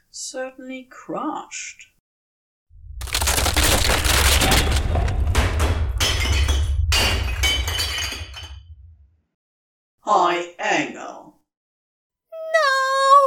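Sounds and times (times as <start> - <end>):
speech: 0.2 - 1.9, 10.1 - 11.2
deep rumbling of a collapsing building: 2.7 - 9.2
shattering, splintering debris of a collapsing building: 2.9 - 8.8.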